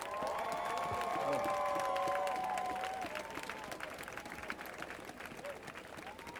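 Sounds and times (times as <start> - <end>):
crowd whooping and cheering: 0.0 - 3.8
crowd clapping: 0.0 - 6.3.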